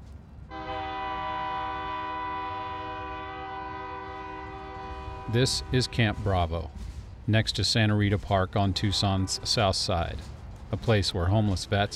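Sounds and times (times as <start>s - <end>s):
train rolling past: 0.0s - 11.9s
train horn blaring: 0.5s - 6.5s, 8.6s - 9.9s
speech: 5.3s - 11.9s.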